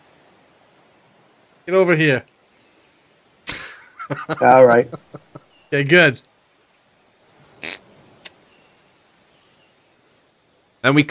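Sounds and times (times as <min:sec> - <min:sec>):
speech: 0:01.7 - 0:02.3, 0:04.1 - 0:06.3, 0:10.8 - 0:11.0
laughter: 0:03.5 - 0:05.5
imitated fart noise made by mouth: 0:07.6 - 0:07.8.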